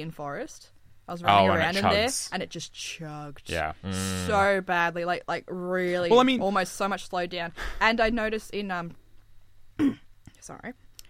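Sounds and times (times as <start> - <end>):
speech: 0.0 - 9.0, 9.8 - 10.8
throat clearing: 9.8 - 10.1.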